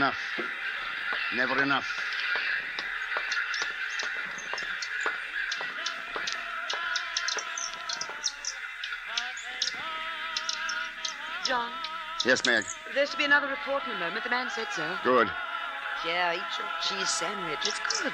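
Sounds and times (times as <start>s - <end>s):
speech: 0.0s - 0.5s, 1.3s - 2.1s, 11.5s - 15.4s, 16.0s - 18.1s
dense crowd of birds on window sills squawking and cawing: 0.0s - 18.1s
sharp taps: 0.3s - 8.3s
wings fluttering: 0.5s - 13.1s.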